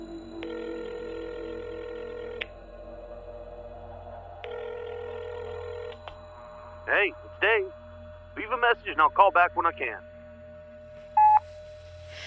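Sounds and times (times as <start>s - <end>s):
telephone line ringback tone as an outgoing call connects: 0.4s - 2.4s, 4.4s - 6.0s, 11.2s - 11.4s
speech: 6.9s - 7.8s, 8.4s - 10.1s.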